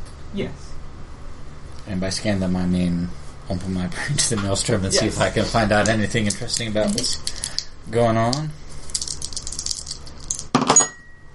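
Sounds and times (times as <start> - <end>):
speech: 0.3 - 0.7, 1.9 - 8.6
many dice rattling, tumbling and clattering: 8.8 - 10.5.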